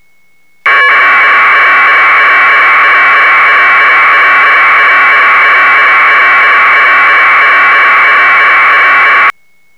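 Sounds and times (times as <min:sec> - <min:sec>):
flat packet radio audio data bursts: 0:00.7 - 0:09.3.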